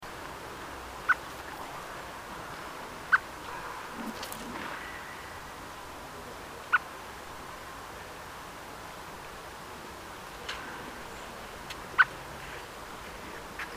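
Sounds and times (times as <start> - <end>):
steady background hiss: 0.0 - 13.7
Eurasian blackbird Turdus merula clicking calls: 1.0 - 1.7.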